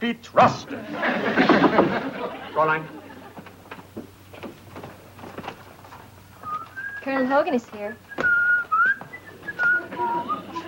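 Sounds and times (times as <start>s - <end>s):
speech: 0.0s - 2.0s, 2.6s - 3.0s, 7.1s - 8.1s
laughter: 0.7s - 3.7s, 9.5s - 10.6s
man whistling a short lilting tune: 6.4s - 7.0s, 8.1s - 10.6s.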